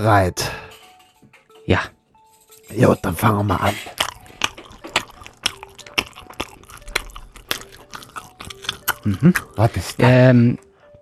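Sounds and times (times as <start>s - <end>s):
speech: 0.0s - 0.6s, 1.7s - 2.0s, 2.7s - 4.0s, 9.0s - 10.6s
person chewing stuffed pork stomach with moist bites and soft crunches: 3.5s - 10.9s.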